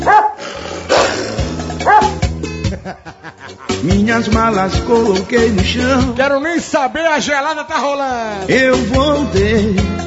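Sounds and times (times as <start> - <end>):
dog barking and yipping: 0.0 - 0.4, 1.8 - 2.2
laughter: 2.5 - 4.5
speech: 3.8 - 9.9.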